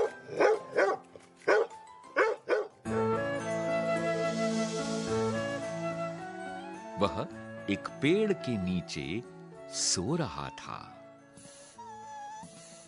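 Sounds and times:
white dog barking sharply: 0:00.0 - 0:02.7
steady music: 0:00.0 - 0:12.8
speech: 0:07.0 - 0:11.0.

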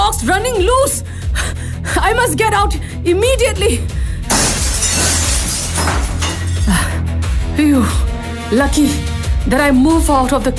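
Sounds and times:
speech: 0:00.2 - 0:01.2, 0:01.8 - 0:04.0, 0:07.6 - 0:10.5
window glass shattering and tinkling: 0:04.3 - 0:06.6.

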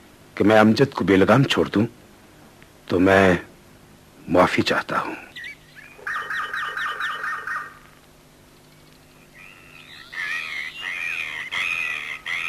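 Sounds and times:
speech: 0:00.4 - 0:02.0, 0:02.9 - 0:03.5, 0:04.3 - 0:05.3
myna bird calling with whistles and squawky chatter: 0:04.9 - 0:12.4.

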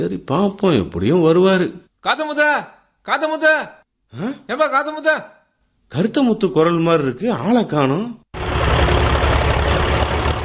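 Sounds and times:
speech: 0:00.0 - 0:08.2
heavy diesel tractor engine idling: 0:08.4 - 0:10.4.

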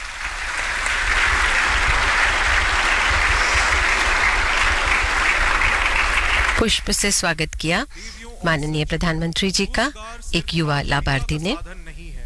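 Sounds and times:
crowd applauding at a formal government ceremony in India: 0:00.0 - 0:06.8
speech: 0:06.6 - 0:11.9.

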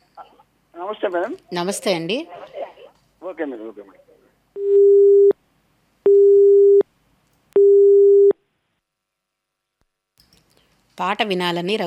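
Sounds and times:
speech: 0:00.9 - 0:02.5, 0:03.3 - 0:04.1, 0:11.0 - 0:11.8
telephone busy tone after a caller hangs up: 0:04.6 - 0:05.3, 0:06.1 - 0:06.8, 0:07.6 - 0:08.3.

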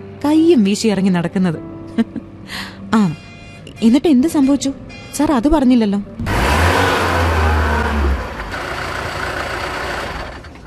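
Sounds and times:
speech: 0:00.2 - 0:03.2, 0:03.8 - 0:06.4
bus engine as the bus suddenly stops on the road: 0:06.2 - 0:10.6.

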